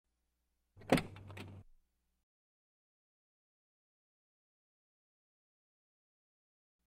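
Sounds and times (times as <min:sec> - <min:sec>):
car door opening: 0:00.8 - 0:01.6.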